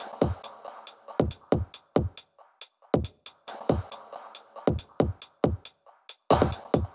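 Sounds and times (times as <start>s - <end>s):
drum and percussion loop at 138 BPM: 0.0s - 6.9s.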